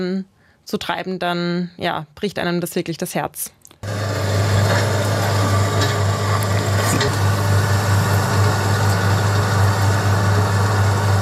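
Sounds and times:
speech: 0.0 - 4.0
heavy diesel excavator engine idling: 3.8 - 11.1.

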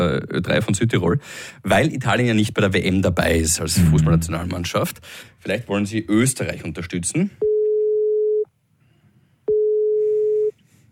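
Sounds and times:
speech: 0.0 - 7.5
telephone busy signal of electronic beeps: 9.5 - 10.5.

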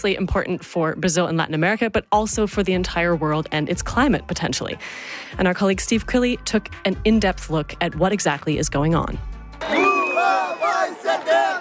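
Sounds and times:
speech: 0.0 - 9.7
supporters cheering and chanting at a political rally in Brazil: 9.6 - 11.6.

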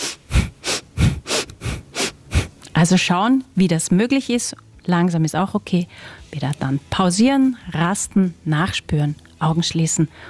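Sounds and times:
quick forceful breaths through the nose as a breathing exercise: 0.0 - 2.6, 5.9 - 6.2
speech: 2.8 - 10.2.

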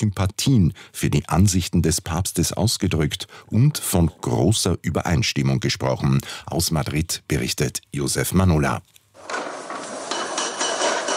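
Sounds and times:
speech: 0.0 - 9.4
hammering: 9.2 - 11.1
outdoor construction clatter: 9.2 - 11.1.

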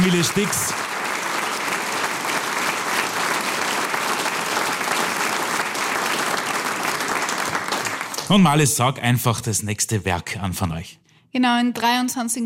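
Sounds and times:
sizeable audience applauding a family music group: 0.0 - 8.8
speech: 0.1 - 0.8, 8.3 - 12.4.

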